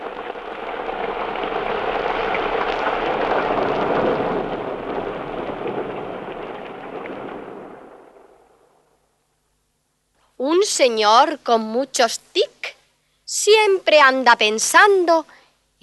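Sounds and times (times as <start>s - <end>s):
steady heavy rain pouring: 0.0s - 9.0s
speech: 10.8s - 12.5s, 13.4s - 15.8s.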